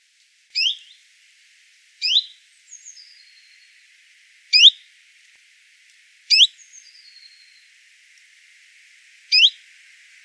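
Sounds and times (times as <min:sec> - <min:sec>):
common chiffchaff Phylloscopus collybita rising hweet calls: 0:00.6 - 0:00.9, 0:02.0 - 0:02.3, 0:09.3 - 0:09.6.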